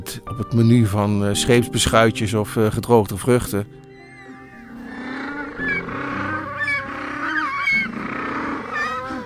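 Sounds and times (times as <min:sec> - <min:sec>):
speech: 0:00.1 - 0:03.8
colony of penguins braying and honking: 0:03.9 - 0:09.2.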